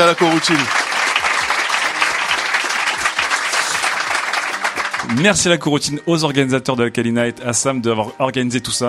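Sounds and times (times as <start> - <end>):
speech: 0.0 - 0.8, 5.1 - 8.8
audience clapping in a coworking space: 0.0 - 5.7.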